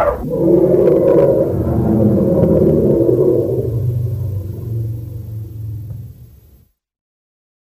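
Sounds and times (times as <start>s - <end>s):
elephant rumble with low throaty growl: 0.0s - 6.7s.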